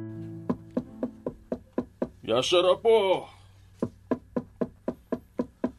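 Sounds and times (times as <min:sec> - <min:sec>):
knocking on a bedroom door: 0:00.5 - 0:02.2, 0:03.8 - 0:05.7
speech: 0:02.3 - 0:03.4.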